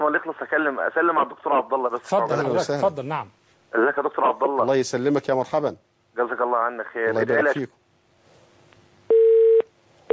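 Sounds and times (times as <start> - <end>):
speech: 0.1 - 7.8
telephone tone after a dropped call: 9.1 - 10.1.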